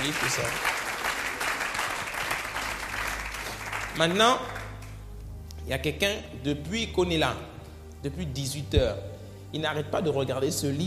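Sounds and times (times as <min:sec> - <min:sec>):
speech: 0:00.0 - 0:00.8, 0:04.0 - 0:04.6, 0:05.6 - 0:10.8
church congregation applauding: 0:00.0 - 0:05.1.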